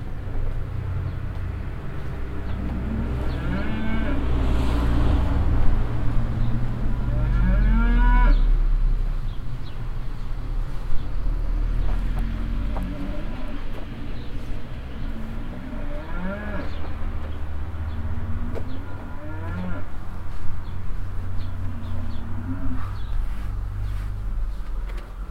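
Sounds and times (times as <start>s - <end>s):
cars passing on a nearby street: 0.0s - 25.3s
other cows answering more quietly at a farmstead: 1.8s - 5.5s, 6.9s - 8.6s, 11.3s - 25.3s
cow mooing loudly behind a bush at a farmstead: 2.9s - 4.3s, 7.0s - 8.5s, 12.5s - 13.6s, 15.6s - 16.8s, 18.3s - 19.9s, 21.7s - 23.1s.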